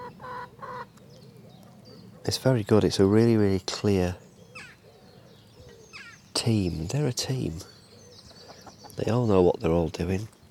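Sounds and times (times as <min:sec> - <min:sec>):
hens clucking: 0:00.0 - 0:01.0
speech: 0:02.2 - 0:04.2, 0:06.4 - 0:07.7, 0:09.0 - 0:10.4.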